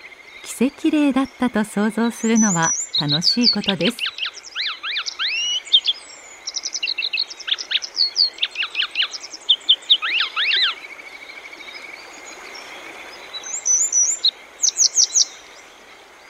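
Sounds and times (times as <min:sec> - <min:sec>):
flowing stream water rushing: 0:00.0 - 0:16.2
grey wagtail singing on a rock by a stream on the Boso Peninsula, Japan: 0:00.4 - 0:10.7
speech: 0:00.6 - 0:04.1.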